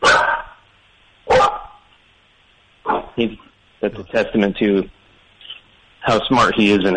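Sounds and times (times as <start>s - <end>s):
Portuguese water dog barking: 0.0s - 0.6s, 1.3s - 1.9s, 2.9s - 3.2s
speech: 3.2s - 5.0s, 6.1s - 6.9s.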